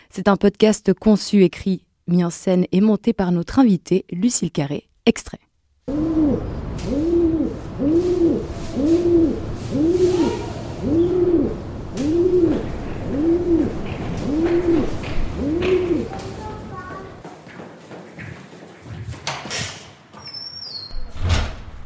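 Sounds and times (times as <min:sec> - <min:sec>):
speech: 0:00.1 - 0:10.0
pigeons cooing: 0:05.9 - 0:16.6.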